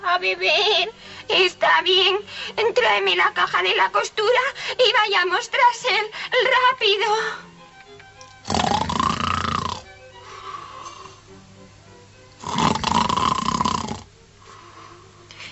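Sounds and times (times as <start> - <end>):
speech: 0.2 - 7.5
wolf snoring while napping: 8.4 - 9.9, 12.4 - 14.1.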